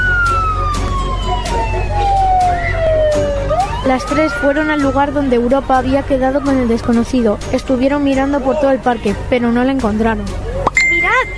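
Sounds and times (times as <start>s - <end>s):
police car siren wailing: 0.0s - 6.6s
low rumbling engine: 0.0s - 11.3s
road noise: 0.0s - 11.3s
speech: 3.9s - 10.5s.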